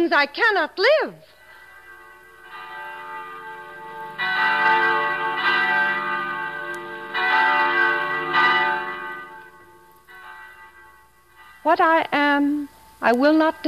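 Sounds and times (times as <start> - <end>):
speech: 0.0 - 1.4, 11.6 - 13.6
church bells ringing in a resonant peal: 0.8 - 13.6.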